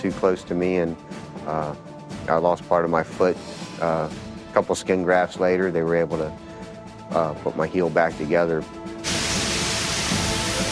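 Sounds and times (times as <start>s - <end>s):
speech: 0.0s - 6.4s, 7.1s - 8.9s
high-pressure water gun spraying in an enclosed booth: 9.0s - 10.7s.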